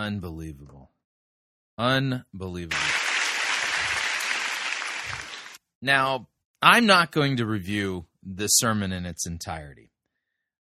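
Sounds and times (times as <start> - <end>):
speech: 0.0 - 1.0, 1.8 - 3.0, 5.8 - 9.9
audience clapping: 2.7 - 5.6.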